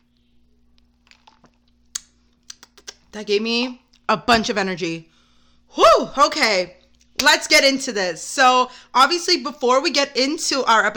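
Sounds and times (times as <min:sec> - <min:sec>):
faint hum: 0:00.0 - 0:10.9
sipping caramel iced coffee from a cup: 0:00.8 - 0:01.8
soft wet mouth clicks and swallows: 0:00.8 - 0:03.1
speech: 0:03.1 - 0:05.1, 0:05.7 - 0:10.9.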